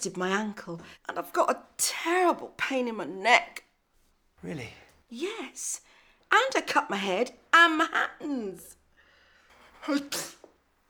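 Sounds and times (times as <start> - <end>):
speech: 0.0 - 3.7, 4.4 - 8.8, 9.8 - 10.4
person sneezing: 9.8 - 10.5.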